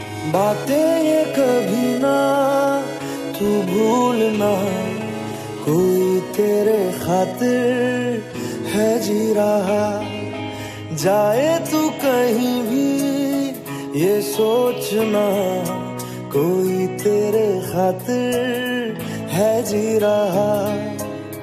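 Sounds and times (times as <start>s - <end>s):
sad Hindi ringtone: 0.0s - 21.4s.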